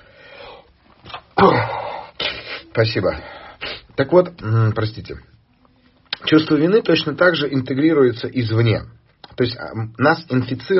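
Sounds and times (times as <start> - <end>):
person sneezing: 1.3 - 2.8, 3.6 - 3.9
speech: 1.4 - 1.7, 2.8 - 3.4, 4.0 - 5.3, 6.3 - 10.7
breathy intake: 1.4 - 3.9
sniffling: 1.4 - 4.0.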